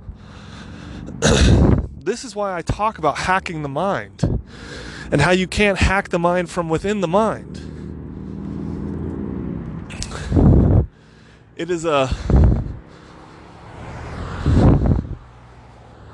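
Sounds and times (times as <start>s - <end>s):
cars whooshing past outdoors in Post Falls Idaho: 0.0s - 16.1s
speech: 1.1s - 7.6s, 11.6s - 12.2s
wind noise on a windy cold day: 1.2s - 2.1s, 4.2s - 4.5s, 9.9s - 11.0s, 12.1s - 12.8s, 14.3s - 15.4s.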